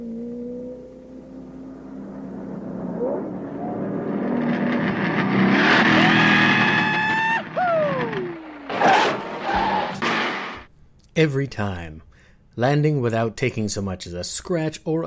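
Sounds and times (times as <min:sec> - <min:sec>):
car engine revving: 0:00.0 - 0:10.7
tires skidding across pavement: 0:02.2 - 0:10.7
speech: 0:11.2 - 0:15.0.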